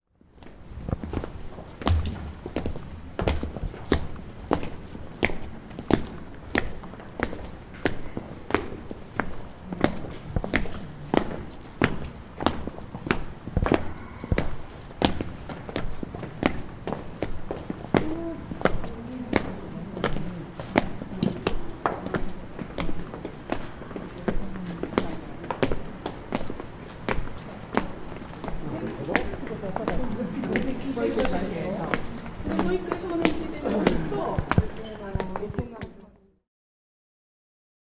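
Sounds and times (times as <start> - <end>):
footsteps on a civic hall slope: 0.5 - 35.9.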